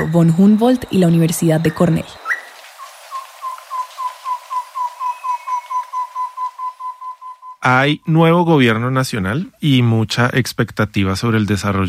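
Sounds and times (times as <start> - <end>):
speech: 0.0 - 2.2, 7.6 - 11.8
common tobacá bird trilling: 0.0 - 7.6
faint ambience: 0.0 - 11.8.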